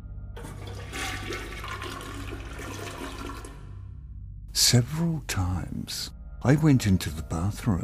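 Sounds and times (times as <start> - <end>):
toilet flushing: 0.4 - 3.8
speech: 4.7 - 7.8.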